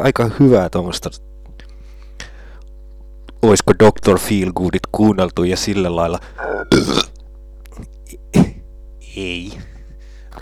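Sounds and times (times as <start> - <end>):
speech: 0.0 - 1.3, 3.4 - 7.1, 9.2 - 9.7
steady electrical hum: 0.0 - 10.4
man burping while trying to say a word: 6.2 - 8.6.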